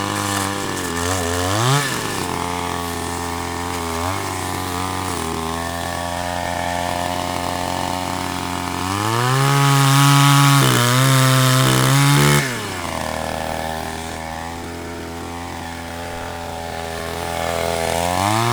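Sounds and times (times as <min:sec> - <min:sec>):
petrol chainsaw running: 0:00.0 - 0:18.5.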